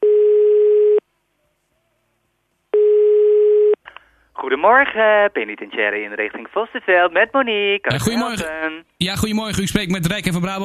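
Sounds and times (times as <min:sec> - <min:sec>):
telephone line tones while a call connects: 0:00.0 - 0:01.0, 0:02.8 - 0:03.8
speech: 0:04.4 - 0:10.6.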